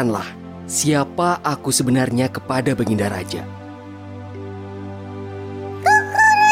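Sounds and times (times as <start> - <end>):
speech: 0.0 - 3.6
rooster crowing: 5.8 - 6.5.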